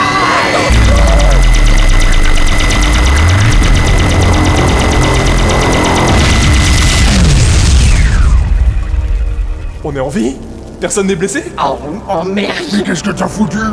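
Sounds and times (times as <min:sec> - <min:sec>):
swooping mechanical whines: 0:00.0 - 0:08.6
massive roaring explosion of a destroyed field generator: 0:00.6 - 0:09.8
crackling debris: 0:00.7 - 0:11.4
speech: 0:09.9 - 0:13.7.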